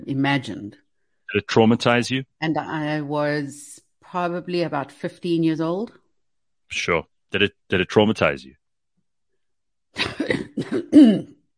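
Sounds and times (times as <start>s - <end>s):
speech: 0.1s - 6.0s, 6.7s - 8.6s, 10.0s - 11.4s
person coughing and choking: 10.0s - 11.4s.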